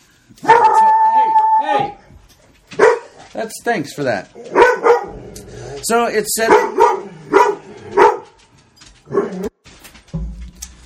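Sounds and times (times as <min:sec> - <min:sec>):
dog barking: 0:00.4 - 0:00.8, 0:02.7 - 0:03.3, 0:04.5 - 0:05.2, 0:06.4 - 0:08.4, 0:09.1 - 0:09.5
speech: 0:03.4 - 0:04.6, 0:05.9 - 0:06.8.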